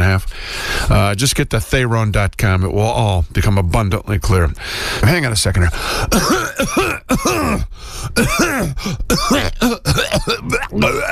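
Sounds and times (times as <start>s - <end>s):
speech: 0.2s - 11.1s
person clearing throat: 6.1s - 11.1s.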